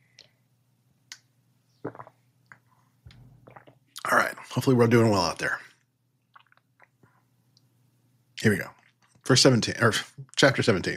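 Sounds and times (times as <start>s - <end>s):
gulping swallows: 1.8s - 4.1s
person drinking water: 1.8s - 4.5s, 6.3s - 7.3s
speech: 4.1s - 5.7s, 8.4s - 10.9s.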